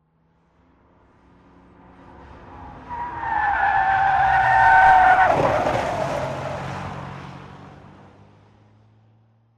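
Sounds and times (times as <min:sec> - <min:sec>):
car drifting with body tilting and lowering: 0:01.8 - 0:07.9.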